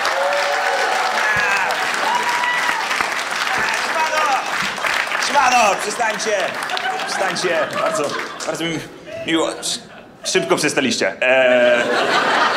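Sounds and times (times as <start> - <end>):
audience cheers and whoops: 0.0 - 4.6
large audience applause: 0.0 - 8.6
laughter: 5.4 - 10.6, 11.3 - 12.5
speech: 5.5 - 12.5.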